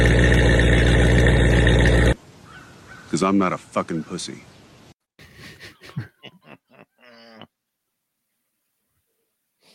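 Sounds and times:
throaty V8 car engine running: 0.0 - 2.2
speech: 3.2 - 4.5.

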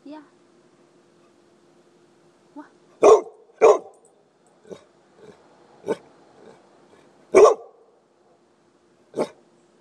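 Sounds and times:
dog barking: 3.0 - 4.0, 7.3 - 7.8, 9.2 - 9.4.

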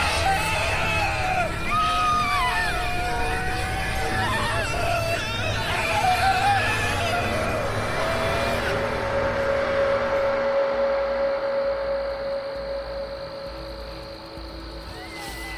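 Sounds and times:
two children screaming in terror: 0.0 - 10.5, 14.8 - 15.5
noisy background: 0.0 - 15.5.

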